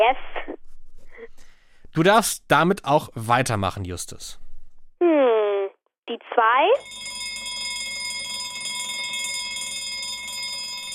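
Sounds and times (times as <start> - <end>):
speech: 0.0 - 0.4, 2.0 - 4.4, 6.1 - 7.1
bell ringing in a game: 6.8 - 10.9.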